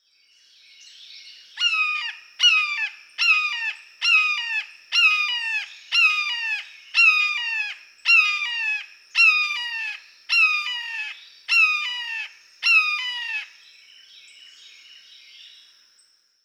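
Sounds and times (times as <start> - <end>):
blue jay calling: 1.6 - 13.6.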